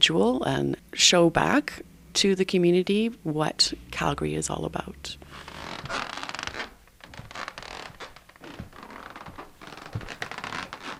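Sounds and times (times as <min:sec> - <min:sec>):
speech: 0:00.0 - 0:06.0
scraping and rustling: 0:05.2 - 0:10.9
wooden floorboards creaking underfoot in a bookshop: 0:05.2 - 0:10.9.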